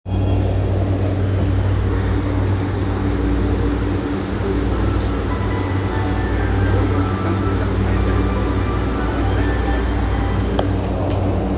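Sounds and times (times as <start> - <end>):
train noise: 0.0 - 11.5.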